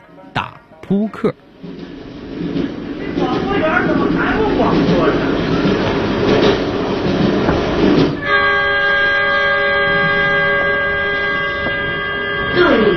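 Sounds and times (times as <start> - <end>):
speech: 0.9 - 1.5
passenger train rolling along with a rumbling clatter: 1.5 - 12.9
passenger train horn sounding a sustained tone: 8.2 - 12.9.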